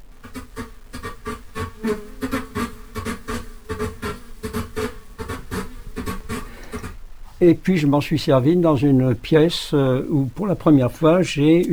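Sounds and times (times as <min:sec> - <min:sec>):
synthetic bee-like buzz cross-synthesized with partridge rhythm: 0:00.0 - 0:09.0
droning hum: 0:00.0 - 0:11.7
speech: 0:01.8 - 0:02.1, 0:07.4 - 0:11.7.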